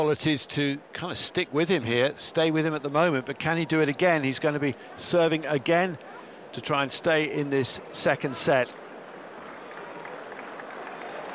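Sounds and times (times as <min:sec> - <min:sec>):
speech: 0:00.0 - 0:08.8
tennis crowd applauding during a match: 0:08.3 - 0:11.3.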